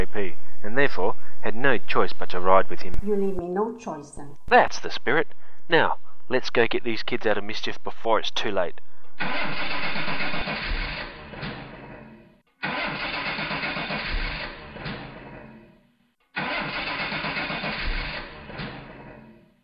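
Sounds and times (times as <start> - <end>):
speech: 0.0 - 10.1
old car engine cranking and sputtering: 9.2 - 15.5, 16.4 - 19.6.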